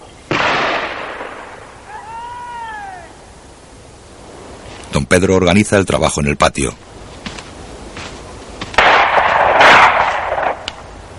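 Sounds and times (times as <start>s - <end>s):
hunting gunshots: 0.3s - 1.7s, 8.7s - 10.8s
speech: 5.0s - 6.9s.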